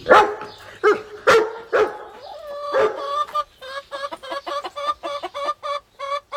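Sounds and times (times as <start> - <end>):
dachshund barking: 0.0 - 3.2
hens in a henhouse clucking and squawking over a worm: 0.0 - 6.3.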